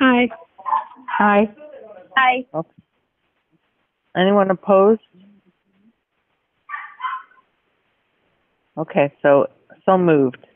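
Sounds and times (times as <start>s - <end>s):
speech: 0.2s - 0.4s, 1.2s - 1.6s, 2.2s - 2.8s, 4.2s - 5.2s, 8.8s - 10.5s
dog barking sharply: 0.6s - 1.3s, 6.7s - 7.4s.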